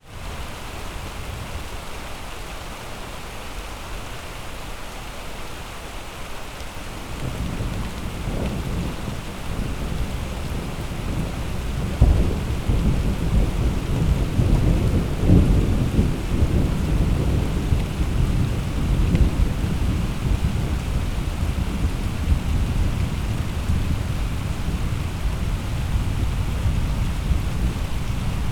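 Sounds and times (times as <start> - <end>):
rain on a street in the UK: 0.0 - 28.5
distant thunder: 7.1 - 28.5.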